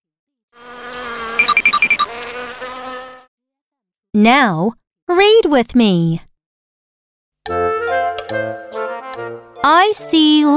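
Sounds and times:
bee buzzing: 0:00.5 - 0:03.3
speech: 0:04.2 - 0:06.3, 0:08.3 - 0:08.7, 0:09.6 - 0:10.5.

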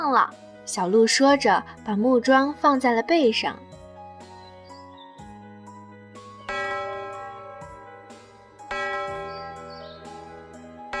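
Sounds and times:
speech: 0:00.1 - 0:03.7
bell ringing in a forest: 0:06.2 - 0:10.9.

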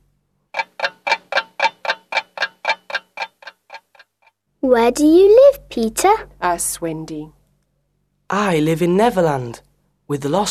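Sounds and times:
clock ticking: 0:00.6 - 0:04.3
speech: 0:04.6 - 0:07.4, 0:08.3 - 0:10.4.

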